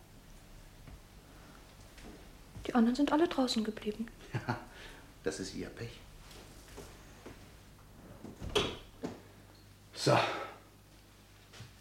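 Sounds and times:
speech: 2.6 - 6.1, 10.0 - 10.4
door swinging shut with a soft thud: 8.3 - 9.2.

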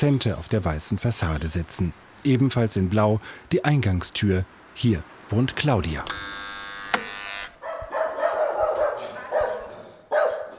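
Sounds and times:
speech: 0.0 - 6.4
dog barking with echo in a stone stairwell: 7.6 - 10.5.

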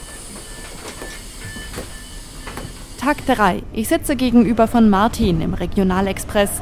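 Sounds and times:
faint train brakes hissing: 0.0 - 3.5
train wheels clanking and squealing on track: 0.0 - 3.5
train rolling slowly into a station heard from inside the carriage: 0.0 - 6.5
speech: 3.0 - 6.5.

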